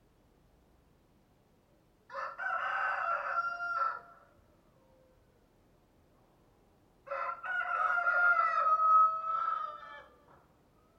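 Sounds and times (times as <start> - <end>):
rooster crowing: 2.1 - 4.2, 7.1 - 10.2.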